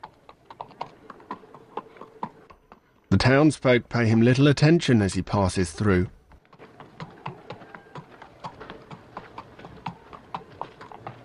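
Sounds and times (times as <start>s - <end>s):
horse hooves clip-clopping on a hard surface: 0.0s - 3.1s, 6.2s - 11.2s
speech: 3.2s - 6.2s.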